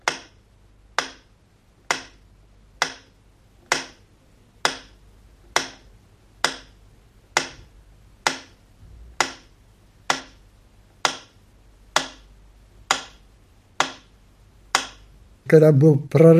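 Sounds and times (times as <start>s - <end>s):
metronome ticking over city radio: 0.0s - 15.2s
faint low hum: 0.0s - 16.3s
speech: 15.5s - 16.3s.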